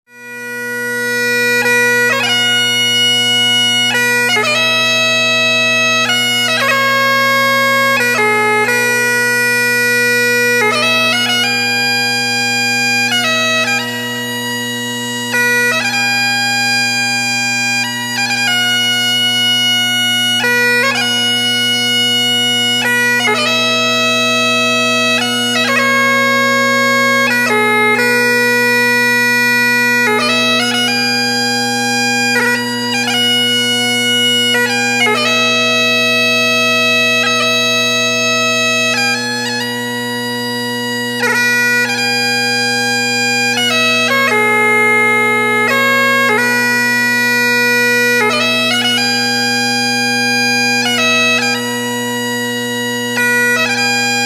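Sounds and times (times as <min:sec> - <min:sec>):
bagpipe tune: 0:00.0 - 0:54.2.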